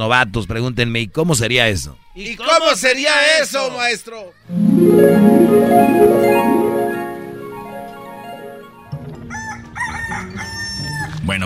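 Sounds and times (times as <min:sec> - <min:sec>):
speech: 0:00.0 - 0:06.6, 0:11.3 - 0:11.4
rooster crowing: 0:09.4 - 0:11.1.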